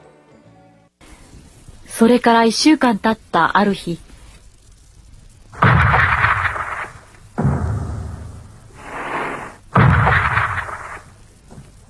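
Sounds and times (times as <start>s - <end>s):
speech: 1.9s - 4.1s
warship naval gunfire shelling a shore: 5.6s - 9.0s, 9.7s - 11.2s.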